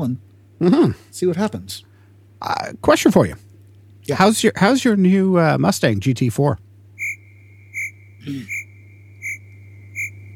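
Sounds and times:
speech: 0.0s - 6.6s, 8.2s - 8.6s
crickets chirping: 6.9s - 10.3s
low croaking call: 7.0s - 10.3s.

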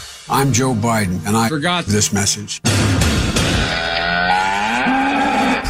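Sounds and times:
speech: 0.4s - 3.0s
cow mooing: 3.6s - 5.6s.

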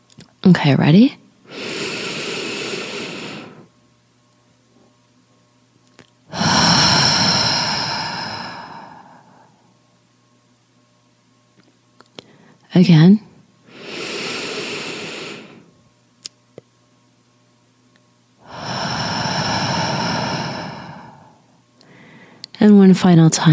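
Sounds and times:
speech: 0.4s - 1.2s, 12.8s - 13.3s, 22.9s - 23.5s
deep breathing in a slow counted relaxation exercise: 1.4s - 3.7s, 6.3s - 9.8s, 13.6s - 15.7s, 18.4s - 22.5s.

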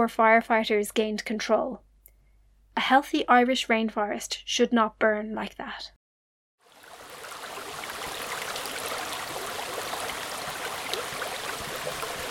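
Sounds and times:
speech: 0.0s - 1.8s, 2.8s - 6.0s
stream flowing through an Atlantic rainforest wood in Ireland: 6.6s - 12.3s.

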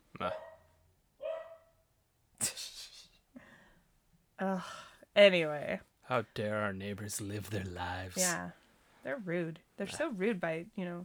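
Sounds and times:
moderately dogs barking with sharp woofs: 0.2s - 1.7s
speech: 4.4s - 11.0s.

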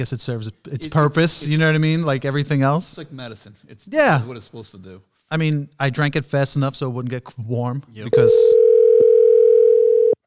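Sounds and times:
speech: 0.0s - 8.7s
electronic phone ringing tone: 8.2s - 10.2s.

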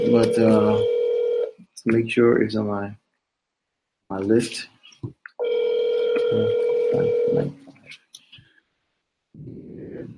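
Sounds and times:
telephone dialing a number and ringing: 0.0s - 1.5s, 5.4s - 7.4s
speech: 0.1s - 0.9s, 1.8s - 3.0s, 4.1s - 5.2s, 6.3s - 7.6s.

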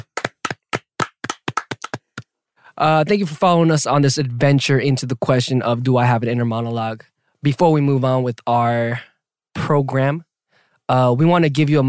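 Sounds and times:
short round of applause from a few hands: 0.0s - 2.3s
speech: 2.8s - 10.3s, 10.9s - 11.8s.

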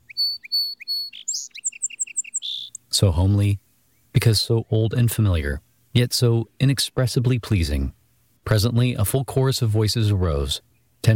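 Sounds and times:
song sparrow singing: 0.0s - 6.7s, 10.5s - 11.1s
speech: 3.0s - 3.6s, 4.2s - 11.1s.

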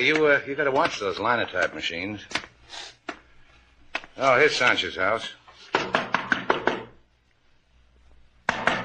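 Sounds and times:
speech: 0.0s - 3.0s, 4.2s - 5.9s
knocking on the wooden door of a house: 5.8s - 7.0s.

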